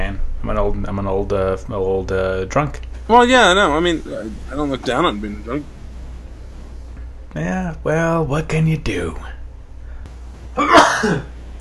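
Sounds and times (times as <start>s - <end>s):
speech: 0.1s - 5.8s, 7.3s - 9.4s, 10.6s - 11.3s
sneeze: 10.6s - 11.3s.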